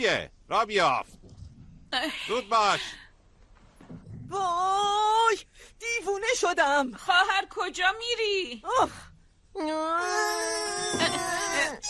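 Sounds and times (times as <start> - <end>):
speech: 0.0 - 1.2, 1.9 - 3.0, 4.3 - 11.8
person crying and sobbing: 10.0 - 11.8.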